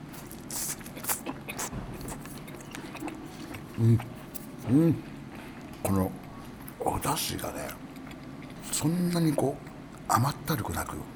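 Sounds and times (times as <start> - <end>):
person biting and chewing bite-sized inari sushi in fried tofu: 0.0 - 5.8, 7.9 - 8.8
speech: 3.8 - 5.1, 5.8 - 6.2, 7.0 - 7.9, 8.8 - 11.1.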